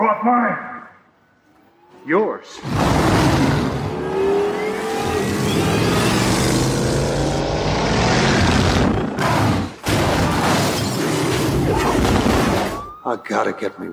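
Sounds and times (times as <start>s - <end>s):
speech: 0.1s - 0.7s, 2.0s - 3.0s, 13.0s - 13.9s
crashing booms: 2.6s - 3.9s, 8.0s - 12.9s
heavy armored car engine roaring and revving: 2.6s - 10.1s
debris breaking: 8.4s - 12.9s.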